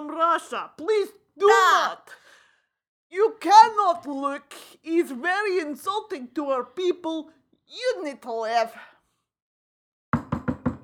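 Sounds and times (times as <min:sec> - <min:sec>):
speech: 0:00.2 - 0:02.2, 0:03.1 - 0:08.9
knocks on a wooden bathroom door: 0:10.2 - 0:10.8.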